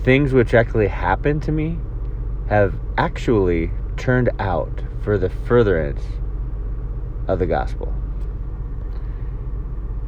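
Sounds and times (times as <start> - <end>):
speech: 0.0 - 1.9, 2.5 - 6.2, 7.3 - 8.0
car engine idling while warming up: 0.0 - 10.0.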